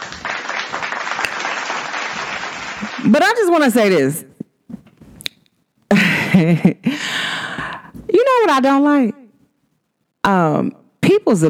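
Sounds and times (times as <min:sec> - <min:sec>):
crowd applauding: 0:00.0 - 0:03.2
speech: 0:03.0 - 0:04.3, 0:06.4 - 0:07.0, 0:08.4 - 0:09.2, 0:10.2 - 0:11.4.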